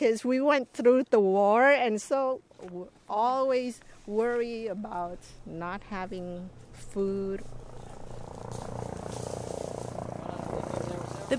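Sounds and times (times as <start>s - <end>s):
speech: 0.0s - 7.7s
helicopters hovering overhead at a dusty hot Marine base: 3.8s - 11.3s.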